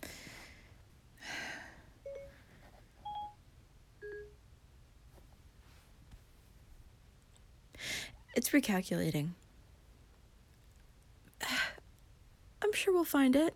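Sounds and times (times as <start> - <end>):
short dual-tone phone keypad beeps: 2.1 - 2.3, 3.1 - 3.4
speech: 8.4 - 9.4, 12.8 - 13.5.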